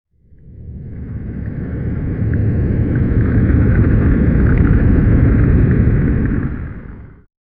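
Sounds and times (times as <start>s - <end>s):
geyser erupting with a powerful burst of water: 0.6s - 7.3s.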